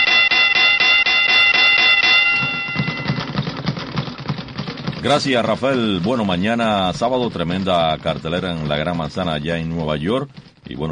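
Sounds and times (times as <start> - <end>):
boxing ring bell clanging: 0.0 - 3.4
speech: 5.0 - 10.9.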